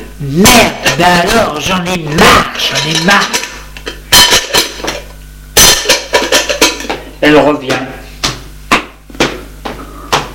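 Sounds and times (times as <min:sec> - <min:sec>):
speech: 0:00.2 - 0:03.4, 0:07.3 - 0:07.9
pots and pans clattering in a kitchen: 0:02.1 - 0:07.1.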